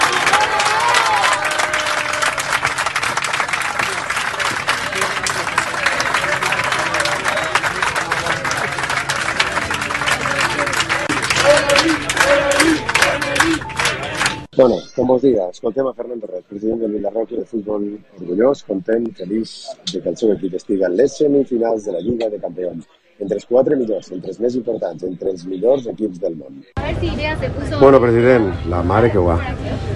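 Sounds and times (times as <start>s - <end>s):
packed airplane cabin of people clapping and cheering: 0.0s - 14.5s
scattered voices and whoops: 0.0s - 15.0s
speech: 14.6s - 29.9s.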